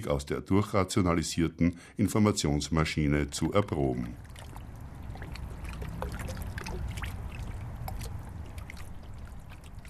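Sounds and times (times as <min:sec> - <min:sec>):
speech: 0:00.0 - 0:04.4
river water lapping against a boat hull: 0:03.3 - 0:09.8.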